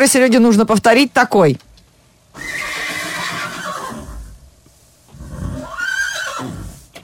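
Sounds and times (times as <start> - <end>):
speech: 0.0 - 1.7
horse neighing: 2.4 - 4.4, 5.1 - 6.8.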